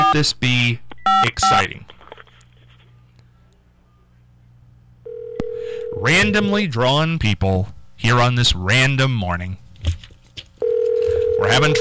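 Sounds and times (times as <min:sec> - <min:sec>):
low hum: 0:00.0 - 0:11.7
speech: 0:00.1 - 0:02.0, 0:06.0 - 0:10.0, 0:11.4 - 0:11.7
steady telephone line tone: 0:05.1 - 0:06.6, 0:10.6 - 0:11.7.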